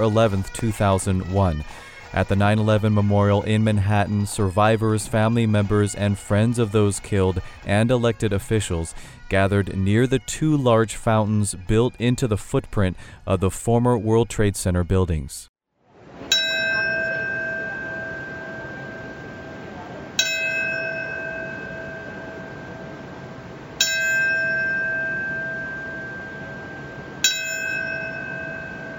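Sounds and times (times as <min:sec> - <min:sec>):
speech: 0:00.0 - 0:15.5
soft steady outdoor noise: 0:15.7 - 0:28.9
memorial bell tolling: 0:16.2 - 0:28.9.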